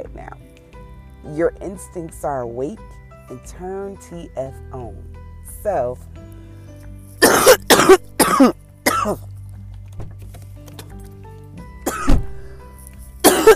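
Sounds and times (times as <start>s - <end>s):
speech: 1.2s - 6.2s, 7.9s - 9.3s
person coughing in a fit: 7.2s - 9.2s, 11.9s - 12.2s, 13.2s - 13.5s.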